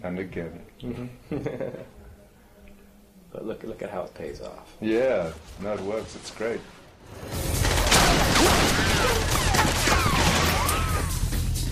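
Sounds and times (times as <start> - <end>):
speech: 0.0 - 2.0, 3.3 - 7.5
film action scene gunfire: 7.5 - 11.2
whining ricochet sweeps in film gunfire: 8.2 - 11.2.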